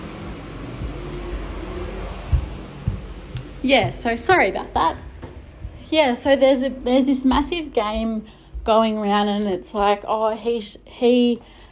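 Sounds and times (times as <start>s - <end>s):
rubbish truck engine rumble passing outside: 0.0s - 8.3s
road noise: 0.0s - 8.6s
dull mechanical thumps from rubbish truck: 0.6s - 10.1s
speech: 3.6s - 5.1s, 5.9s - 11.6s.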